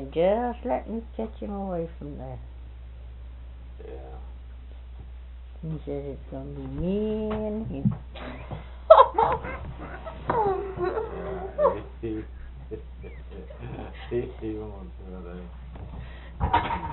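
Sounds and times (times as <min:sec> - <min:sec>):
speech: 0:00.0 - 0:02.5, 0:03.8 - 0:04.3, 0:05.6 - 0:16.9
laughter: 0:08.2 - 0:14.4
small dog yelping: 0:08.9 - 0:12.0
small dog whimpering and squealing: 0:09.2 - 0:11.9.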